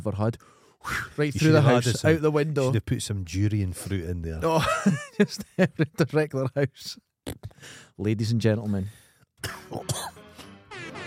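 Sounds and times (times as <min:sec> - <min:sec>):
speech: 0:00.0 - 0:10.2
laughter: 0:04.4 - 0:06.6
rough throat-clearing rasp: 0:09.4 - 0:10.2
sharp coughs: 0:09.4 - 0:10.2.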